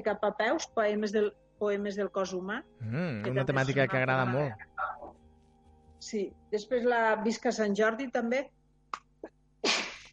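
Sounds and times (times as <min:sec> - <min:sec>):
speech: 0:00.0 - 0:04.9, 0:06.0 - 0:09.0
person sneezing: 0:09.6 - 0:10.1.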